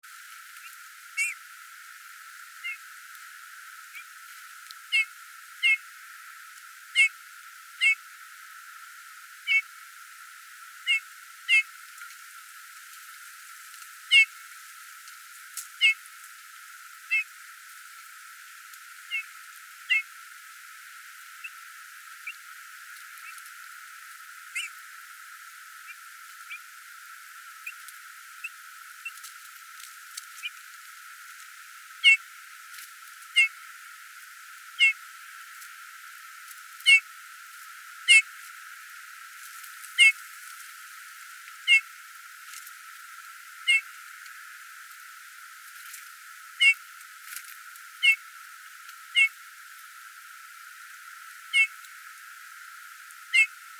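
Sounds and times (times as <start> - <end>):
bullfinch: 0.6 - 1.4, 4.9 - 5.8, 7.0 - 7.2, 7.8 - 8.0, 9.5 - 9.7, 10.9 - 11.7, 14.1 - 14.3, 15.8 - 16.0, 17.1 - 17.3, 19.1 - 20.1, 24.5 - 24.8, 32.0 - 32.2, 33.3 - 33.6, 34.8 - 35.0, 36.8 - 37.1, 38.1 - 38.3, 40.0 - 40.2, 41.6 - 41.9, 43.7 - 43.9, 46.6 - 46.8, 48.0 - 48.2, 49.1 - 49.4, 51.5 - 51.8, 53.3 - 53.6.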